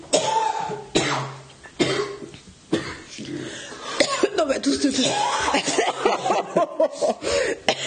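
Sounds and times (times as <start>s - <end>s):
harsh raspy coughing fit: 0.1s - 3.4s, 4.0s - 4.4s, 5.0s - 6.4s, 7.4s - 7.8s
rough wheezy breathing: 3.2s - 4.0s, 6.9s - 7.8s
speech: 4.8s - 7.8s
laughter: 5.5s - 7.3s.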